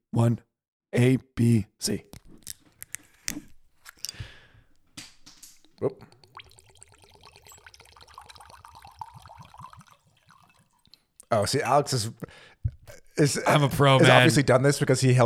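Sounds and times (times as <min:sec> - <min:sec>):
speech: 0:00.1 - 0:02.2, 0:05.8 - 0:06.0, 0:11.3 - 0:12.5, 0:13.2 - 0:15.2
two mini bottles twisted open: 0:02.1 - 0:11.0
liquid pouring: 0:02.2 - 0:11.5.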